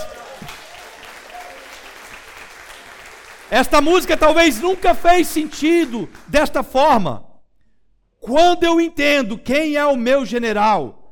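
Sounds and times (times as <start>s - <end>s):
congregation clapping: 0.0s - 7.0s
speech: 3.5s - 7.3s, 8.2s - 11.0s.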